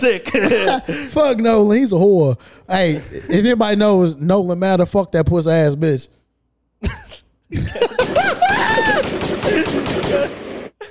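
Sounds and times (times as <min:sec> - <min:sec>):
laughter: 0:00.0 - 0:01.4, 0:06.8 - 0:10.8
speech: 0:00.0 - 0:06.2, 0:06.8 - 0:08.1
gunshot sound effects played from a soundboard: 0:08.9 - 0:10.8.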